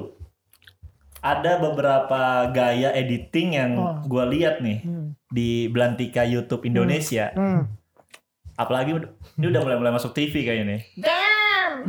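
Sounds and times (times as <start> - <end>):
wet chewing of a crunchy mouthful of toast: 0.5 - 1.2
speech: 1.2 - 7.8, 8.6 - 11.2.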